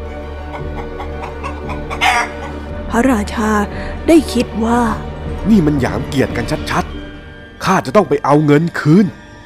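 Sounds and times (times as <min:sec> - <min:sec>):
chicken clucking: 0:00.4 - 0:02.6
speech: 0:03.0 - 0:07.0, 0:07.7 - 0:09.2.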